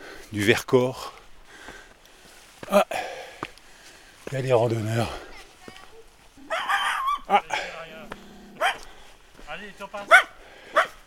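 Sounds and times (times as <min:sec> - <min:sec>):
speech: 0:00.3 - 0:01.2, 0:02.7 - 0:03.0, 0:04.3 - 0:05.3, 0:09.8 - 0:10.3
small white dog yapping on a mountain trail through larch and fir forest: 0:06.5 - 0:07.4, 0:08.6 - 0:08.8.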